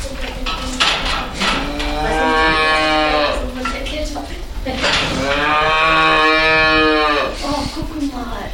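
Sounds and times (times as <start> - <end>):
barn clatter and rustling: 0.0 - 8.5
cattle mooing in a calf barn: 0.5 - 3.9, 4.7 - 7.9.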